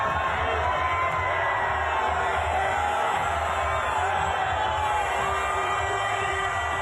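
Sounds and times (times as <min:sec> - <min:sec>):
football fans cheering at an open-top bus parade: 0:00.0 - 0:06.8
football fans whooping and shouting: 0:00.0 - 0:06.8.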